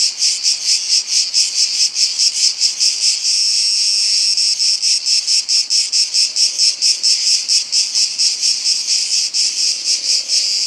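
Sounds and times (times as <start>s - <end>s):
cicada singing in summer: 0.0s - 10.6s.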